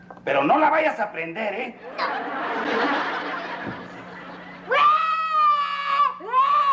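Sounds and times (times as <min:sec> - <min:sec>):
noise: 0:00.0 - 0:04.8
speech: 0:00.2 - 0:03.2
laughter: 0:01.8 - 0:05.6
child wailing loudly: 0:04.7 - 0:06.7.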